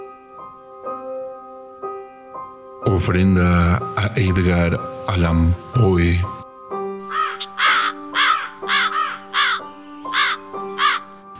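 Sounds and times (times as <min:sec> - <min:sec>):
speech: 0:02.8 - 0:06.4
raven cawing: 0:07.0 - 0:11.2.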